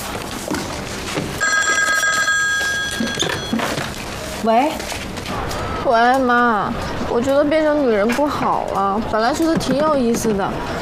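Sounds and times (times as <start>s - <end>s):
low hum of indoor noise: 0.0s - 10.8s
telephone ringing with an electronic trill: 1.4s - 3.9s
speech: 4.4s - 5.0s, 5.8s - 10.8s.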